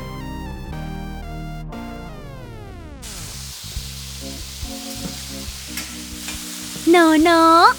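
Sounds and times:
morning glory sizzling as it is stir-fried in a hot pan: 3.0 - 7.7
speech: 6.9 - 7.7.

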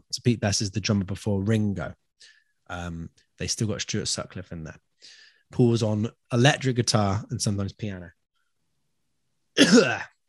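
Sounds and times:
speech: 0.1 - 8.2, 9.6 - 10.1
throat clearing: 9.6 - 10.2.

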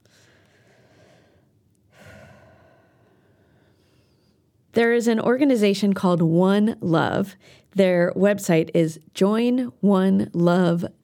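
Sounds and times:
person drawing a deep breath: 0.0 - 4.4
speech: 4.8 - 11.0.

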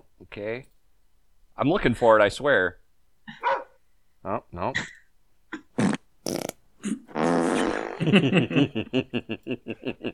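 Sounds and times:
speech: 0.3 - 0.8, 1.6 - 3.4, 4.2 - 5.0, 8.0 - 10.1
fart sound effects: 5.8 - 8.1.

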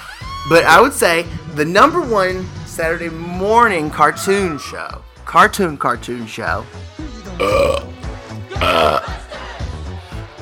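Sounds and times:
speech: 0.4 - 7.9, 8.6 - 9.2
loud drawn-out croaky belch: 7.4 - 7.9, 8.6 - 9.1.

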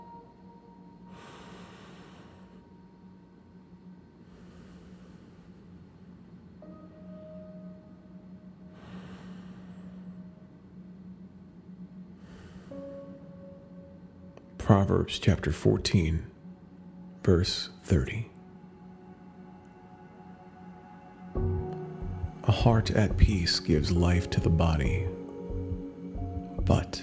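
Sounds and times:
quiet steady hum: 0.0 - 27.0
slow deep breaths in and out: 1.1 - 2.8, 4.2 - 6.3, 8.7 - 10.5, 12.1 - 13.5
speech: 14.7 - 16.3, 17.2 - 18.3, 22.6 - 25.2, 26.7 - 27.0.

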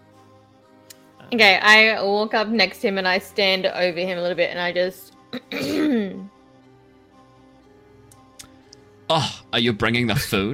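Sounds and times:
speech: 1.3 - 6.2, 9.1 - 10.5
deliberate throat clearing: 5.4 - 6.3, 9.1 - 9.4.

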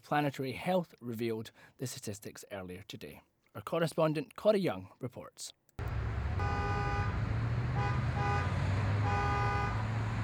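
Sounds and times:
speech: 0.1 - 5.6
car horns honking in city traffic: 5.8 - 10.2
steady rumble of road traffic in Edinburgh: 5.8 - 10.2.

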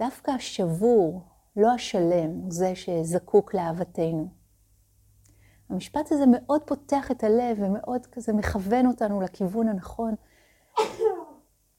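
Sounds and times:
speech: 0.0 - 4.4, 5.7 - 11.2
person sneezing: 10.7 - 11.5.

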